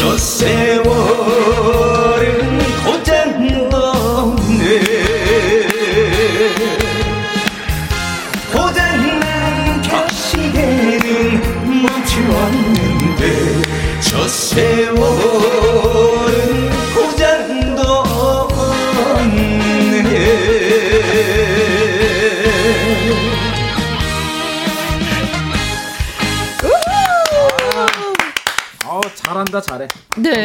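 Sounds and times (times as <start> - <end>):
person singing live on a broadcast: 0.0 - 7.6, 8.3 - 23.8
full instrumental backing: 0.0 - 27.9
steady clap-like beat: 4.7 - 14.3, 26.0 - 30.4.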